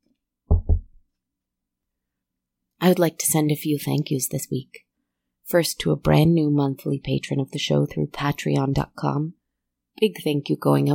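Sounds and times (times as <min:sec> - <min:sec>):
quick loud knocks on wood: 0:00.5 - 0:01.0
speech: 0:02.8 - 0:04.9, 0:05.5 - 0:09.4, 0:10.0 - 0:10.9.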